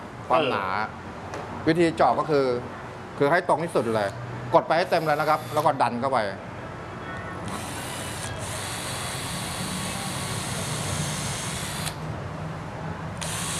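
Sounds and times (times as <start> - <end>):
speech: 0.3 - 6.5
power drill boring holes into wood: 4.8 - 5.7, 7.5 - 12.0, 13.2 - 13.5.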